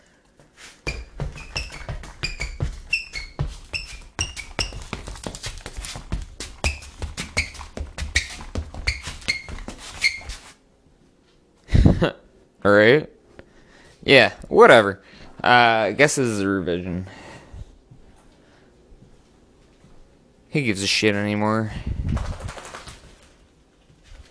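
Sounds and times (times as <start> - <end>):
shoes squeaking sharply against a hard floor: 0.6 - 10.6
thudding footsteps: 0.8 - 10.5
speech: 12.0 - 13.1, 14.1 - 17.2, 20.5 - 22.3.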